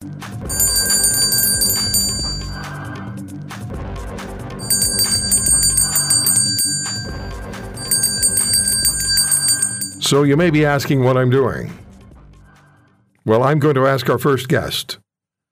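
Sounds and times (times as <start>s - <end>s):
bells ringing: 0.5s - 2.8s, 4.6s - 10.1s
speech: 10.1s - 11.8s, 13.2s - 15.0s.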